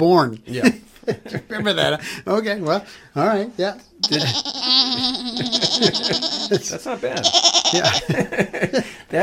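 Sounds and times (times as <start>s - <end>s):
speech: 0.0s - 9.2s
laughter: 0.6s - 2.1s, 4.0s - 9.2s
person imitating a goat with a quavering bleat: 4.0s - 6.5s, 7.2s - 8.0s.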